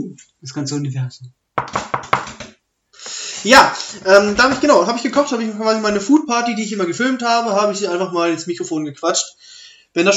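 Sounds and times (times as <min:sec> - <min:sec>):
speech: 0:00.0 - 0:01.9, 0:03.4 - 0:10.1
firm knocking: 0:01.6 - 0:02.6.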